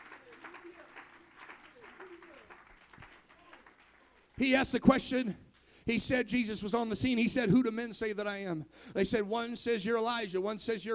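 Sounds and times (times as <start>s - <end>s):
audience clapping in praise: 0.0s - 5.8s
speech: 4.4s - 10.9s.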